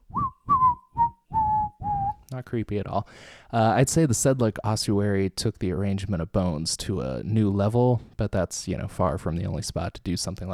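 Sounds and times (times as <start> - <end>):
person whistling a tune: 0.1 - 2.2
speech: 2.4 - 10.5.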